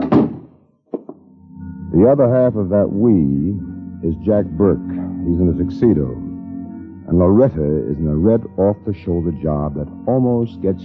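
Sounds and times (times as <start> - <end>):
office door shutting with a heavy thud: 0.0 - 1.1
speech: 2.0 - 6.3, 7.1 - 10.8.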